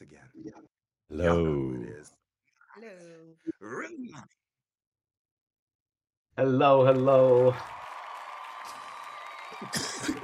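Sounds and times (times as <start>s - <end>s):
speech: 0.4s - 2.1s, 6.4s - 7.8s, 9.7s - 10.2s
crowd cheering with scattered whoops: 6.8s - 10.2s.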